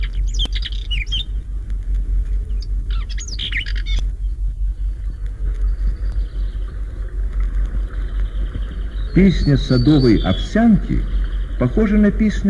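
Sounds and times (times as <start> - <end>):
steady low vehicle rumble: 0.0 - 12.4
speech: 9.2 - 12.4
whinchat giving short scratchy warbled phrases: 9.2 - 12.4.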